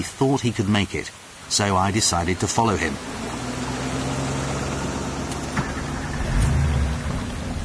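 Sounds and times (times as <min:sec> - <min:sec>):
speech: 0:00.0 - 0:03.4
heavy rain hissing: 0:00.0 - 0:07.6
car engine rumbling while driven along a road with floodwater ahead: 0:02.2 - 0:07.6.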